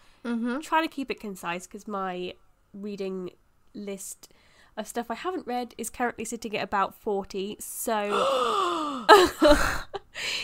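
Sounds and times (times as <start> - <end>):
speech: 0.2 - 10.4
person gasping: 8.1 - 9.2.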